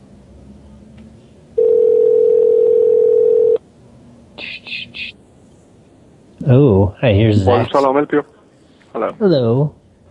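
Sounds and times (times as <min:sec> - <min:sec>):
telephone dial tone: 0:01.6 - 0:03.6
speech: 0:06.5 - 0:08.4, 0:09.0 - 0:09.8.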